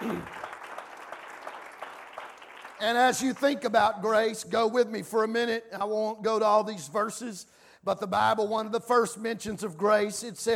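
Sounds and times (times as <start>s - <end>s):
church congregation clapping hands: 0.0s - 4.4s
speech: 2.8s - 10.5s.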